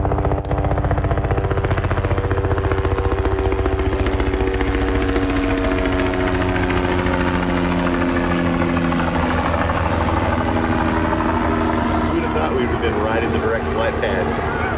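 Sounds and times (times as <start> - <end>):
helicopter flying overhead: 0.0 - 14.7.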